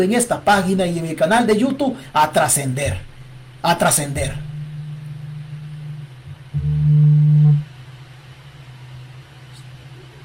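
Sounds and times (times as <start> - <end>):
speech: 0.0 - 4.5
steady low hum: 2.8 - 8.4
electronic stolen car alert notification tone: 4.4 - 7.6.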